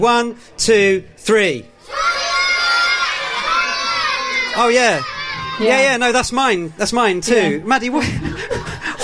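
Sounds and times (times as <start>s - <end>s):
speech: 0.0s - 2.1s, 4.6s - 8.7s
crowd of children shouting answers at once: 1.8s - 6.0s
laughter: 7.4s - 9.0s.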